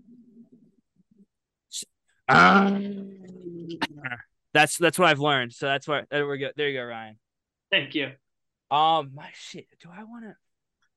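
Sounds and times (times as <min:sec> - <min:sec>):
speech: 0:01.7 - 0:03.1, 0:03.7 - 0:10.4
person imitating a camel's grunting call: 0:02.3 - 0:04.2.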